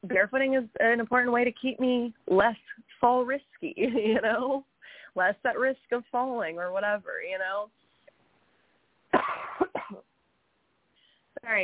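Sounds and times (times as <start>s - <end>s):
speech: 0.0s - 7.8s, 11.4s - 11.6s
person coughing: 9.2s - 10.0s.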